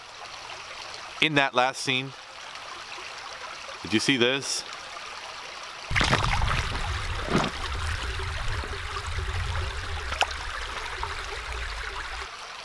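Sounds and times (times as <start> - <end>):
steady rushing creek water: 0.0 - 12.6
speech: 1.2 - 2.2, 3.8 - 4.7
sharp splashes and knocks as someone picks up rocks along the creek: 5.9 - 12.3.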